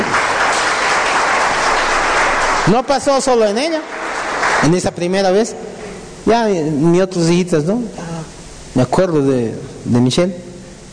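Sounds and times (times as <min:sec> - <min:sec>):
crowd applause at a religious gathering: 0:00.0 - 0:05.2
speech: 0:02.7 - 0:04.0, 0:04.6 - 0:08.0, 0:08.7 - 0:10.4.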